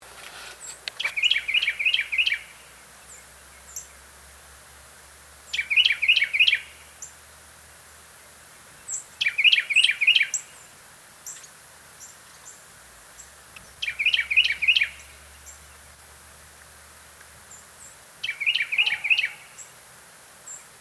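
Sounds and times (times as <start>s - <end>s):
Carolina wren Thryothorus ludovicianus: 0.6s - 4.1s, 5.5s - 7.2s, 8.7s - 16.0s, 17.0s - 19.8s.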